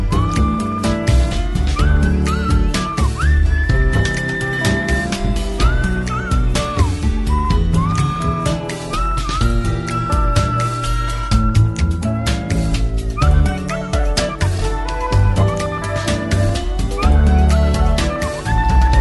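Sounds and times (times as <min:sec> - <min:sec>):
sparse steady musical backing: 0:00.0 - 0:19.0
whistled melody in a minimalist song: 0:00.0 - 0:19.0
crisp finger snaps: 0:00.1 - 0:19.0.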